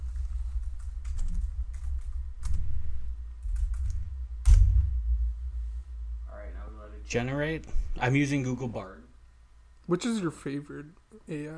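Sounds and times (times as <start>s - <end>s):
low hum: 0.0s - 9.8s
typing on a computer keyboard: 0.2s - 2.7s, 3.4s - 4.0s
speech: 7.0s - 9.1s, 9.9s - 11.5s.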